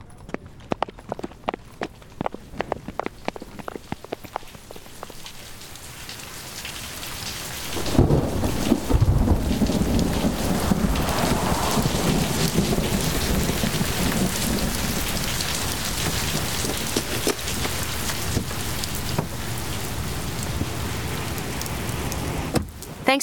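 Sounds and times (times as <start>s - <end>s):
steady rain pattering on a surface: 0.2s - 23.2s
loud rumbling roll of thunder: 7.5s - 22.9s.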